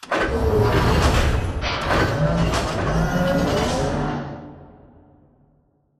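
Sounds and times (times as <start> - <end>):
robot arm passing, receiving and closing: 0.0 - 4.3.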